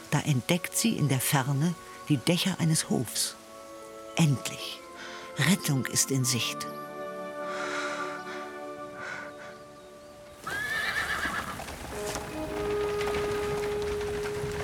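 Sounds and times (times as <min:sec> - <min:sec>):
speech: 0:00.1 - 0:03.4, 0:04.2 - 0:04.8, 0:05.4 - 0:06.8
clattering hoofbeats of horses drawing a black carriage: 0:10.4 - 0:14.6
two horses neighing: 0:10.4 - 0:14.6.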